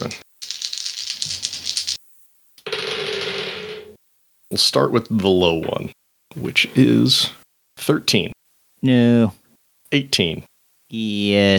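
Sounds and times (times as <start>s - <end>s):
handful of dice rattling and clattering: 0.4s - 2.0s
speech: 4.5s - 11.5s.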